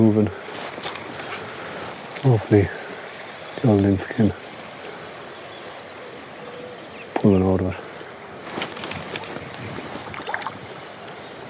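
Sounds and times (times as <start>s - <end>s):
speech: 2.2s - 2.8s, 3.6s - 4.4s, 7.2s - 7.8s
strong wind blowing on the bank of a river pool: 8.3s - 11.4s.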